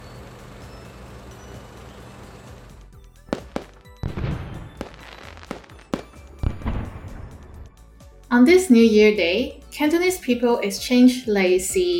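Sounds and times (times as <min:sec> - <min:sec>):
fireworks exploding with booming bangs and crackling: 0:03.2 - 0:07.7
speech: 0:08.3 - 0:11.9.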